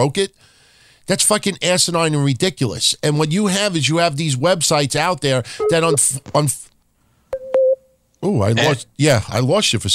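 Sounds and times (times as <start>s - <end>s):
speech: 0.0s - 0.5s, 1.1s - 6.7s, 8.2s - 9.9s
electronic beeping on a phone line: 5.6s - 6.2s, 7.4s - 7.9s.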